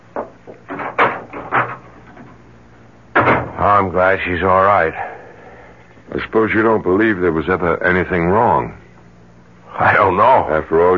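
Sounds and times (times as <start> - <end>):
speech: 0.2 - 0.9, 3.6 - 5.2, 6.1 - 8.8, 9.8 - 10.9
wooden door opening and shutting as someone leaves: 0.6 - 2.3, 3.1 - 3.6.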